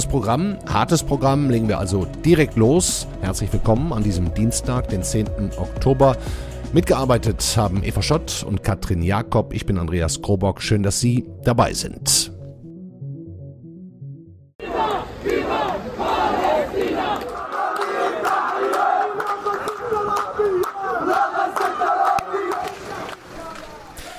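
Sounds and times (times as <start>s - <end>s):
speech: 0.1s - 12.4s
hundreds of people shouting and chanting in unison in the streets: 14.6s - 24.1s.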